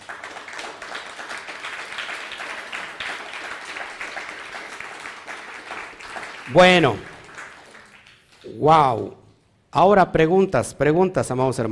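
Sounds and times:
crowd applauding in praise of the Almighty: 0:00.0 - 0:09.1
speech: 0:06.5 - 0:07.1, 0:08.6 - 0:11.7.

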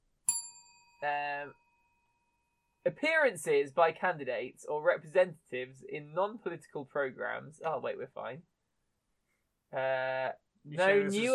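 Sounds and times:
single bright bell strike ringing: 0:00.3 - 0:01.7
speech: 0:01.0 - 0:01.6, 0:02.8 - 0:08.5, 0:09.7 - 0:11.3.

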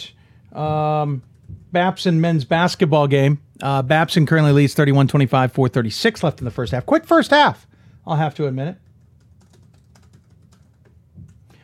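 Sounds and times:
speech: 0:00.0 - 0:08.8
fingers typing on a computer keyboard: 0:01.1 - 0:01.8, 0:08.8 - 0:11.6.

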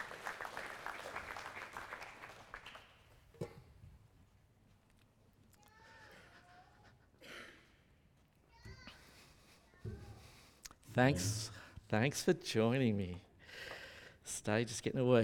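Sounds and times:
audience applause: 0:00.0 - 0:03.0
speech: 0:11.0 - 0:13.7, 0:14.3 - 0:15.2.

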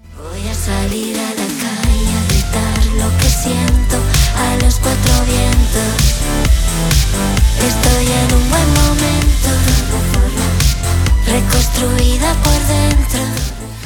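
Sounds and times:
speech: 0:00.7 - 0:01.8, 0:04.8 - 0:08.7
Spanish-language song with full band arrangement and driving beat: 0:01.0 - 0:13.8.

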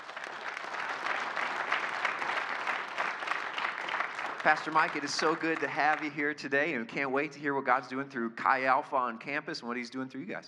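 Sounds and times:
audience applause at a church service: 0:00.0 - 0:06.4
speech: 0:04.4 - 0:10.4.

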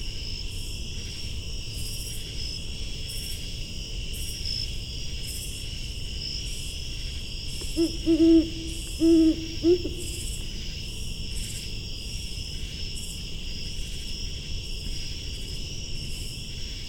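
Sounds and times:
steady high insect drone: 0:00.0 - 0:16.8
female Great horned owl hooting from forest at Patuxent Research Refuge, Maryland: 0:07.6 - 0:10.5.

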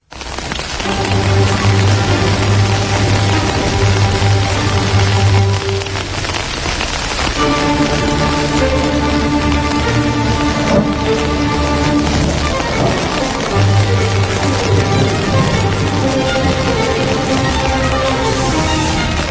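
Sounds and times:
heavy rain pouring down: 0:00.0 - 0:19.2.

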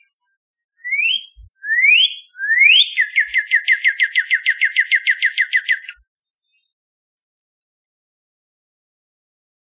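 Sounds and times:
Northern Cardinal singing a rapid run of sharp downslurred notes: 0:00.8 - 0:06.6.

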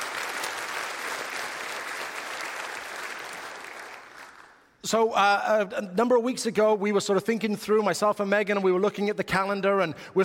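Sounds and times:
audience applause at a church service: 0:00.0 - 0:04.6
speech: 0:04.8 - 0:10.2.

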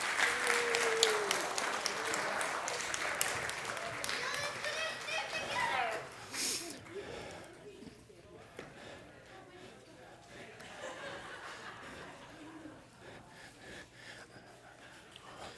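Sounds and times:
audience voices and cheers: 0:00.0 - 0:06.8
audience applauding actors: 0:00.0 - 0:07.4
laughter: 0:00.0 - 0:08.0, 0:08.8 - 0:14.8.

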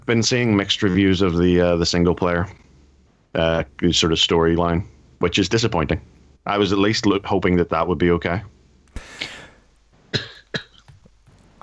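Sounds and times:
speech: 0:00.1 - 0:02.6, 0:03.4 - 0:09.3
short coughs in quick bursts: 0:08.9 - 0:10.9.

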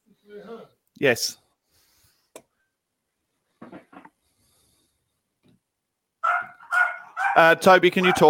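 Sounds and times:
speech: 0:01.0 - 0:01.4, 0:07.4 - 0:08.2
dog barking: 0:06.2 - 0:08.2.

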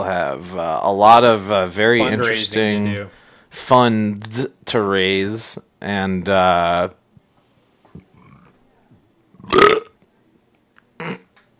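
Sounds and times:
speech: 0:00.0 - 0:07.0, 0:09.4 - 0:09.8
person burping into a microphone: 0:09.4 - 0:10.0, 0:11.0 - 0:11.3.

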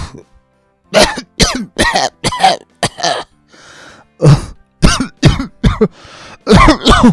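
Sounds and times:
person coughing: 0:00.9 - 0:03.3, 0:04.2 - 0:05.9, 0:06.5 - 0:07.1
raspy breathing: 0:03.4 - 0:04.6, 0:05.8 - 0:06.5.

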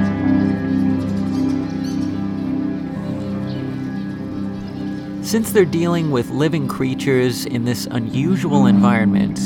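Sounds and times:
steady droning instrument tones: 0:00.0 - 0:09.4
speech: 0:05.3 - 0:09.4.

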